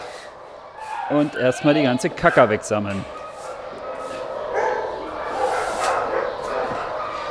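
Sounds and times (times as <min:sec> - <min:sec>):
Podencos and other smaller dogs barking and yipping in kennel enclosures: 0:00.0 - 0:07.2
speech: 0:01.1 - 0:03.2.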